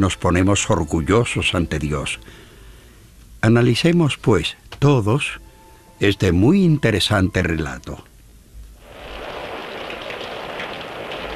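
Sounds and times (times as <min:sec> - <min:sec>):
speech: 0:00.0 - 0:02.5, 0:03.4 - 0:05.4, 0:06.0 - 0:08.1
heavy rain falling: 0:08.8 - 0:11.3.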